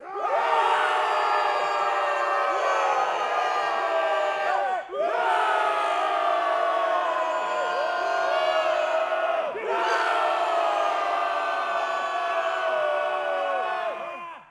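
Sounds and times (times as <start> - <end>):
high crowd cheer: 0.0 - 14.4.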